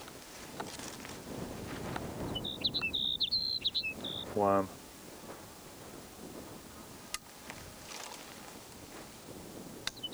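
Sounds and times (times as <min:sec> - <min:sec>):
sage sparrow song: 0:01.2 - 0:04.9, 0:09.6 - 0:10.1
speech: 0:04.4 - 0:04.8.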